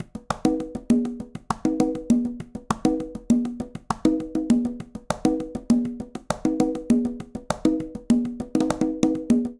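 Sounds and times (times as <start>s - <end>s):
conga tumba playing a cumbia rhythm: 0.0s - 9.5s.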